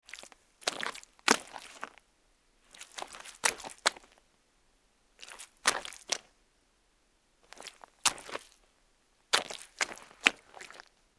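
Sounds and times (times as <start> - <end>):
footsteps scuffing in mud: 0.1 - 2.0, 2.7 - 4.2, 5.2 - 6.2, 7.5 - 8.6, 9.4 - 10.9.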